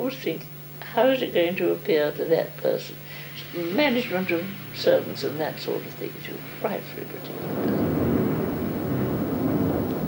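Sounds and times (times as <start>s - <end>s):
speech: 0.1s - 7.8s
thunder rumbling during a thunderstorm: 3.0s - 10.0s.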